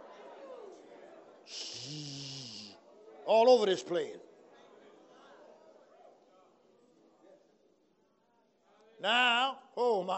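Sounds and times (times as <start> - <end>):
loud raspy breathing with groaning exhale: 1.5 - 2.8
speech: 3.3 - 4.3, 9.0 - 10.1.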